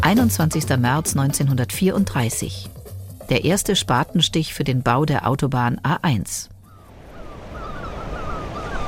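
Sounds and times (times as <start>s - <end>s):
speech: 0.1s - 2.8s, 3.3s - 6.5s
faint high whistling tones: 6.7s - 8.8s
sea surf rushing beneath a Baltic Sea bridge: 6.8s - 8.8s.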